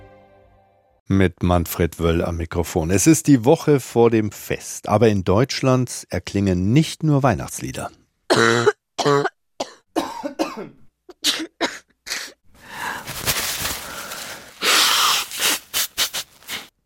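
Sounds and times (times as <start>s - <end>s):
speech: 1.1s - 9.2s
harsh coughs from a respiratory illness: 8.3s - 12.4s
noisy congested breathing: 12.6s - 16.7s.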